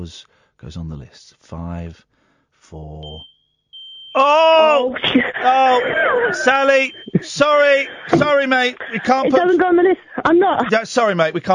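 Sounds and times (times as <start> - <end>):
speech: 0.0 - 3.3, 4.2 - 11.5
smoke alarm low-battery chirp: 3.0 - 9.2
laughter: 4.2 - 10.9.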